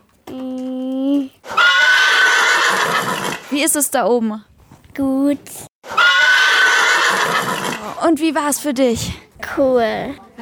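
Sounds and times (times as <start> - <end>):
horse neighing: 1.4 - 3.5, 5.9 - 8.0
speech: 3.6 - 5.7, 7.9 - 10.4.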